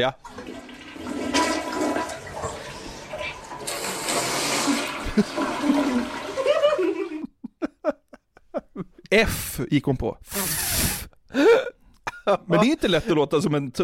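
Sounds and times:
speech: 0.0 - 0.6, 5.2 - 6.2, 9.1 - 10.5, 12.3 - 13.8
toilet flushing: 0.0 - 7.2
laughter: 5.0 - 9.0
short choppy vocal bursts: 10.2 - 11.1.

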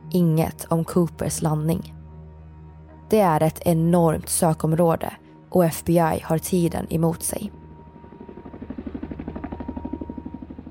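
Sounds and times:
speech: 0.1 - 2.0, 3.1 - 7.6
helicopter rotor chopping while flying overhead: 7.8 - 10.7.

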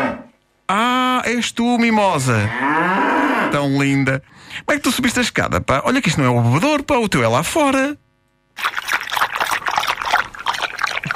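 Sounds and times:
speech: 1.3 - 8.0
water trickling into a bath in a countryside bathroom: 8.6 - 11.1.

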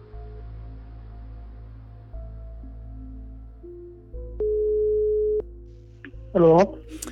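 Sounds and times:
telephone ringback tone while a call connects: 4.4 - 5.4
speech: 6.4 - 7.1.

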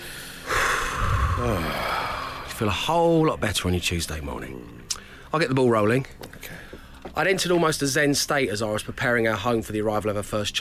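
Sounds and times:
person taking a deep breath in: 0.0 - 2.6
speech: 1.4 - 1.9, 2.6 - 10.6.

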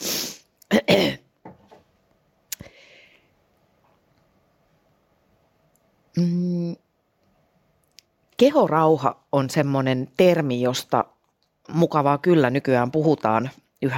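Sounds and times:
person clearing throat: 0.7 - 1.4
person coughing in harsh rough bursts: 0.7 - 1.4
brief voiced hum: 6.1 - 6.8
speech: 8.4 - 11.1, 11.7 - 13.9.

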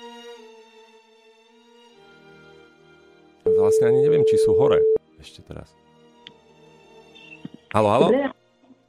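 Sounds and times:
telephone ringback tone while placing a call: 3.5 - 5.0
speech: 3.7 - 5.8, 7.7 - 8.4.

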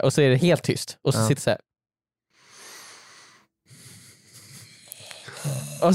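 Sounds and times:
speech: 0.0 - 1.7, 5.4 - 5.9
loud hissing inhale and airy exhale: 2.4 - 5.9.

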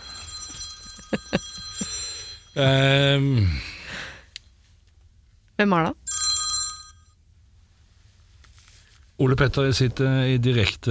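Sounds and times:
telephone ringing with thin electronic tone: 0.0 - 2.9, 6.0 - 7.2
speech: 2.6 - 3.7, 5.6 - 6.0, 9.2 - 10.8.

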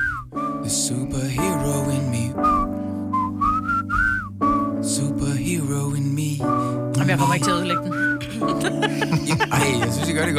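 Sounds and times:
person whistling a short melody: 0.0 - 0.9, 2.4 - 5.0, 6.4 - 6.9, 7.7 - 8.4
low hum of music or background: 0.6 - 10.3
speech: 0.7 - 2.8, 4.9 - 10.3
laughter: 8.3 - 10.3.

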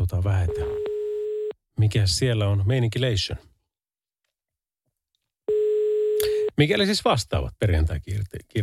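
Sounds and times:
speech: 0.1 - 0.8, 1.8 - 3.5, 6.6 - 8.6
telephone ringing tone on an outgoing call to the road traffic centre in Tampere Finland: 0.5 - 1.6, 5.5 - 6.5.

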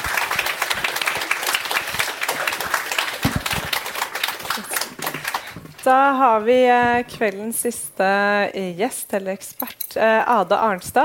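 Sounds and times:
room full of people clapping: 0.0 - 5.8
speech: 5.8 - 11.0.

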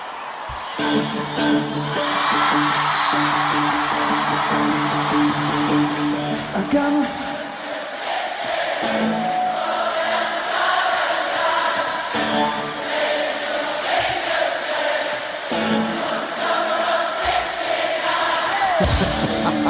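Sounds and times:
whoops and yells: 0.0 - 6.3
large concert crowd cheering loudly: 0.0 - 19.6
speech: 0.8 - 6.0, 6.6 - 7.3
laughter: 18.5 - 19.6.

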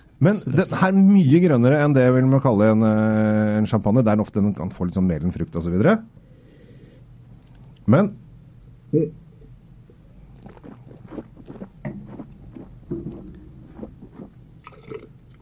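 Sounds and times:
speech: 0.2 - 6.2, 7.9 - 8.2, 8.9 - 9.2
wine slurped and spat out during a wine tasting in a studio: 10.3 - 15.1.

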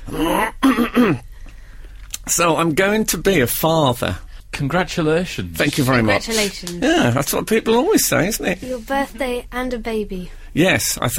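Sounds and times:
person clearing throat: 0.0 - 1.3
speech: 0.1 - 1.3, 2.3 - 11.1.

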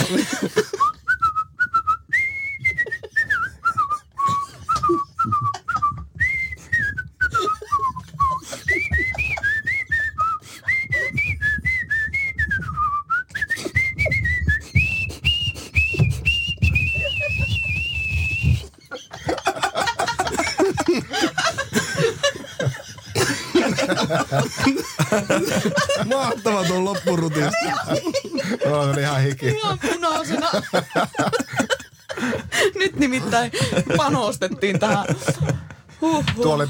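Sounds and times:
laughter: 0.0 - 1.1, 2.6 - 11.2, 15.9 - 36.6
speech: 0.1 - 0.8, 25.1 - 31.5, 33.0 - 36.6
person whistling a lively melody: 0.6 - 18.7.

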